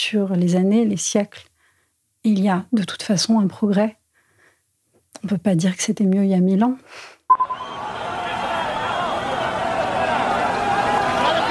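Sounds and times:
speech: 0.0s - 1.5s, 2.2s - 4.0s, 5.2s - 7.8s
large crowd of men shouting while running: 7.6s - 11.4s.

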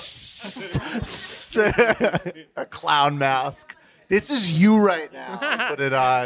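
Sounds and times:
person mimicking a snake with a sharp airy hiss: 0.0s - 1.6s
laughter: 0.3s - 2.8s, 5.0s - 6.2s
speech: 0.4s - 6.2s.

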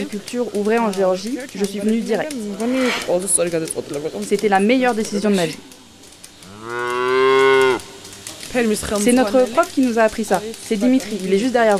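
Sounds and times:
speech: 0.0s - 5.8s, 8.5s - 11.7s
cow mooing: 6.4s - 8.0s.

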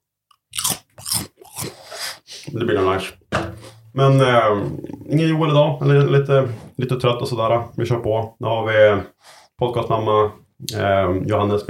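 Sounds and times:
snack food being crunched close to microphones: 0.3s - 2.6s
speech: 2.5s - 3.3s, 4.0s - 11.6s.

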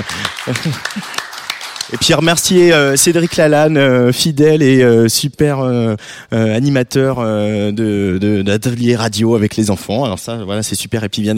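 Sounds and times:
speech: 0.0s - 1.3s, 1.9s - 11.3s
applause from a small group: 0.0s - 3.8s.

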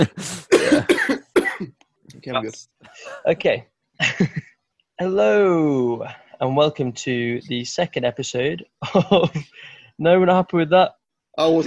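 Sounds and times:
hacking cough into a microphone: 0.0s - 1.8s
speech: 2.3s - 11.6s.

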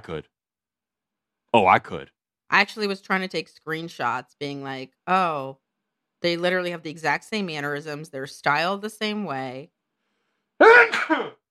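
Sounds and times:
speech: 0.0s - 0.4s, 1.5s - 5.6s, 6.2s - 9.8s, 10.6s - 11.4s
single loud sneeze with a breathy noisy release: 10.6s - 11.4s.

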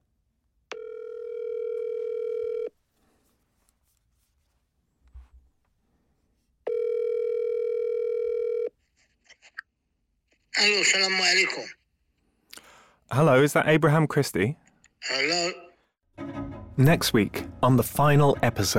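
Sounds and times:
telephone ringback tone through the earpiece on an outgoing call: 0.7s - 2.7s, 6.7s - 8.7s
speech: 10.6s - 11.8s, 13.1s - 15.6s, 16.8s - 18.7s.

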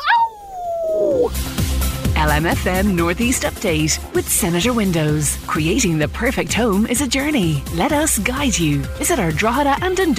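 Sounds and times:
wolf howling: 0.0s - 1.3s
speech: 2.2s - 10.1s.

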